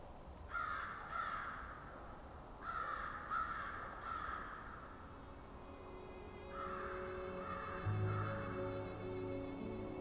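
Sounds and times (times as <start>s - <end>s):
low background noise: 0.0s - 10.0s
muffled flock of crows cawing far off: 0.5s - 5.0s, 6.5s - 8.4s.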